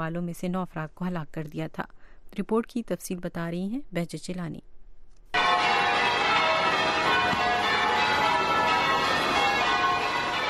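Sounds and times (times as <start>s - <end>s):
speech: 0.0s - 4.7s
church bells ringing from churches across Charleston: 5.4s - 10.4s.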